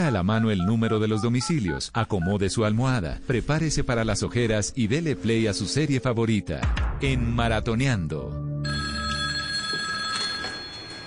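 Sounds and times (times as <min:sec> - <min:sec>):
speech: 0:00.1 - 0:08.8
telephone bell ringing with a bright metallic trill: 0:08.6 - 0:11.0.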